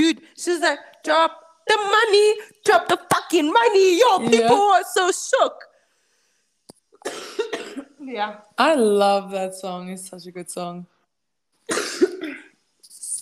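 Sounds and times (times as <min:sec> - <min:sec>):
speech: 0:00.1 - 0:05.7, 0:07.0 - 0:10.9
harsh raspy coughing: 0:07.0 - 0:08.0, 0:11.7 - 0:12.6.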